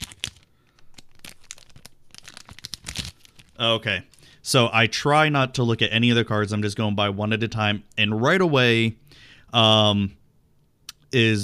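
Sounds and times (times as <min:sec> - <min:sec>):
trading card booster pack foil wrapper being torn open: 0:00.0 - 0:04.2
speech: 0:03.6 - 0:10.2, 0:11.1 - 0:11.4.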